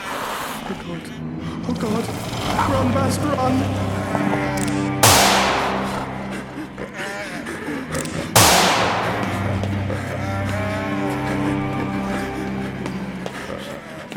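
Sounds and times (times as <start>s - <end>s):
steady low droning background: 0.6s - 14.1s
speech: 0.7s - 5.0s
loud gunshots: 4.6s - 6.7s, 8.0s - 10.2s.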